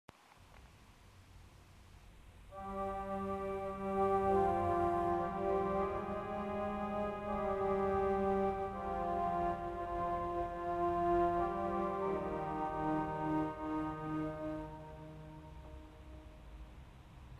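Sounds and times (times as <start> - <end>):
pipe organ with Vox Celeste and Viola Celeste stops: 2.6 - 16.0.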